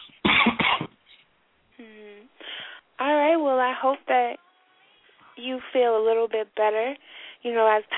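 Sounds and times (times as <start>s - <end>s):
person coughing on a telephone line: 0.0s - 1.0s
short faint hum: 0.0s - 7.9s
speech: 3.0s - 4.4s, 5.4s - 7.9s.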